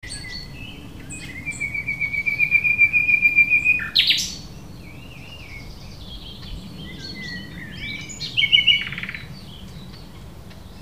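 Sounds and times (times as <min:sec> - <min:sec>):
common nightingale Luscinia megarhynchos song: 0:00.0 - 0:10.8.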